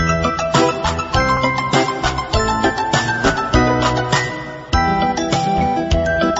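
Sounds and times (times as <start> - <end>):
flute music: 0.0 - 6.3.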